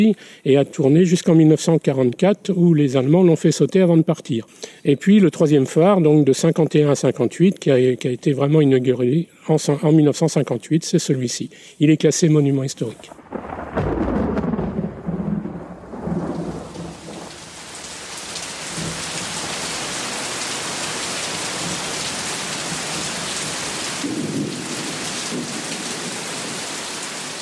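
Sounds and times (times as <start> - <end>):
speech: 0.0 - 14.1
deep thunder rumbling: 13.1 - 17.6, 24.0 - 26.2
heavy rain pouring on a beach: 13.1 - 27.4.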